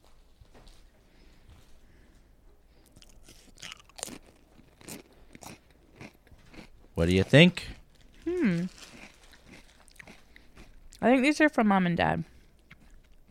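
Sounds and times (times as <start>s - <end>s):
quiet chewing of a potato chip: 0.6s - 11.0s, 12.2s - 13.3s
crisp bites of a French Lay's roast chicken flavour potato chip: 3.0s - 10.7s
speech: 7.0s - 7.7s, 11.0s - 12.3s.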